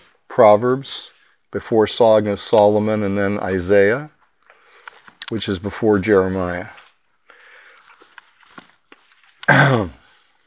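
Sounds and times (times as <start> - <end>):
speech: 0.4 - 4.2, 5.3 - 6.8
faint breaths: 1.0 - 1.5, 4.4 - 5.2, 6.8 - 9.2
loud rough cough with throat-clearing: 9.5 - 10.0.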